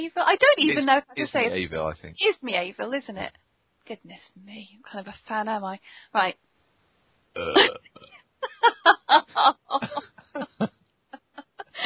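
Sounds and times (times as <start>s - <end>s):
speech: 0.0s - 6.5s, 7.4s - 10.8s
deep rumbling burp: 7.4s - 8.1s
person snickering laughter: 8.4s - 11.8s.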